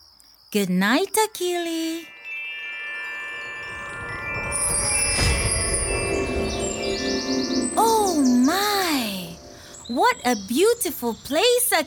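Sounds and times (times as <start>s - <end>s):
speech: 0.5s - 2.2s, 9.9s - 11.8s
steady tonal hum: 2.1s - 10.3s
birds singing and chirping: 4.9s - 11.8s.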